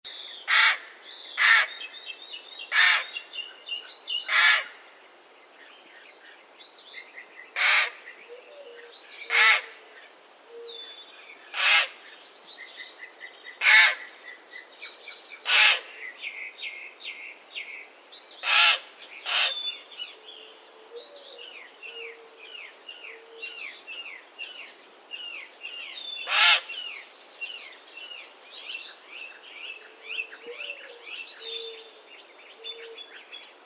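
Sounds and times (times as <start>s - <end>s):
raven calling: 0.5s - 1.7s, 2.7s - 3.1s, 4.3s - 4.8s, 7.6s - 9.8s, 11.5s - 12.0s, 13.6s - 14.1s, 15.4s - 16.0s, 18.4s - 19.6s, 26.2s - 26.8s.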